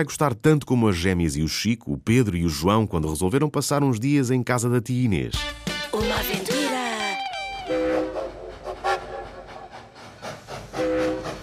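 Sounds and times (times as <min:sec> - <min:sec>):
speech: 0:00.0 - 0:06.4
train horn: 0:07.6 - 0:09.5, 0:10.7 - 0:11.4
train whistle: 0:07.6 - 0:09.8, 0:10.7 - 0:11.4
train rumbling along the tracks: 0:07.7 - 0:11.4.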